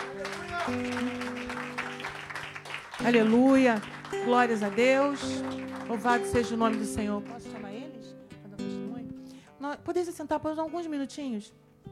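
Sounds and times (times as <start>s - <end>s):
audience applauding: 0.0s - 8.0s
speech: 0.7s - 1.2s, 3.0s - 7.7s, 9.8s - 11.6s.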